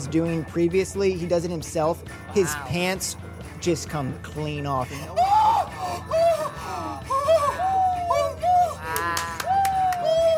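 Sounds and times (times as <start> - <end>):
speech: 0.0 - 5.2
person in an audience screaming and shrieking: 2.3 - 2.8, 5.1 - 9.9.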